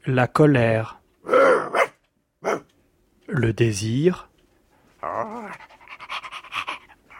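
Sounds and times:
speech: 0.0s - 1.6s, 3.4s - 4.3s, 5.0s - 5.7s
dog panting and whining: 5.0s - 7.0s.

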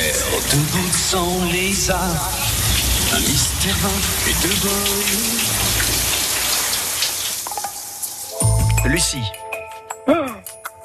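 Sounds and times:
man singing in his shower: 0.0s - 5.7s
shower water running: 0.0s - 8.9s
speech: 0.5s - 2.4s, 3.1s - 5.4s, 8.8s - 9.4s.

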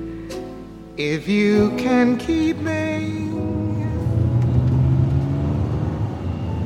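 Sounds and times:
speech: 1.1s - 3.2s
car engine droning from inside the vehicle while driving: 3.4s - 6.6s.

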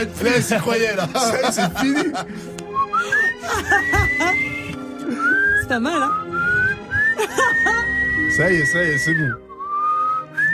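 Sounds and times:
speech: 0.0s - 6.3s, 7.2s - 9.4s
laughter: 0.1s - 5.4s, 6.9s - 8.1s
person whistling a melody: 2.8s - 10.5s.

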